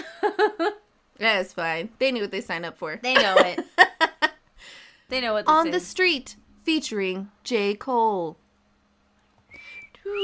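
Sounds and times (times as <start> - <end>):
speech: 0.2 - 8.4, 10.0 - 10.2
person whistling poorly: 9.5 - 10.2.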